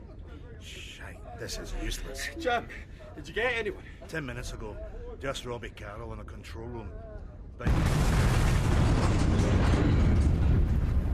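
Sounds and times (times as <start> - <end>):
speech: 0.6 - 8.1
massive gas pipeline explosion on an oil platform: 7.6 - 11.1.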